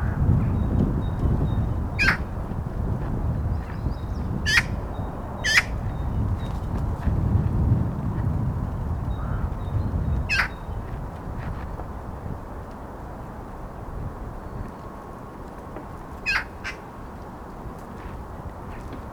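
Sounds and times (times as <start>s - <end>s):
low roar of background noise: 0.0s - 19.1s
Eurasian magpie Pica pica harsh squawking calls: 2.0s - 2.2s, 4.5s - 4.7s, 10.3s - 10.5s, 16.3s - 16.8s.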